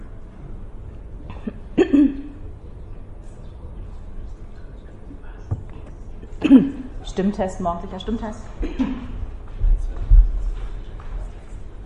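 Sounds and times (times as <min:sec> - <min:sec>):
low hum: 0:00.0 - 0:11.8
person clearing throat: 0:01.3 - 0:02.4, 0:06.4 - 0:06.9, 0:08.6 - 0:09.2
speech: 0:06.4 - 0:09.0.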